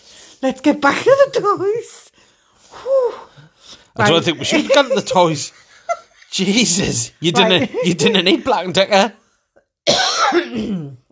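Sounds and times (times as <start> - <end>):
speech: 0.4 - 2.1, 4.0 - 5.6, 6.3 - 9.2, 10.3 - 11.0
laughter: 4.0 - 8.7
harsh rasping cough: 9.8 - 11.0
gravelly throat clearing: 9.9 - 11.1.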